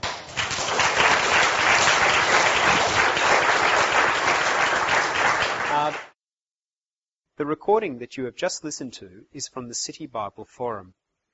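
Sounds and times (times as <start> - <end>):
audience applause for a panel: 0.0 - 6.1
speech: 7.4 - 11.0.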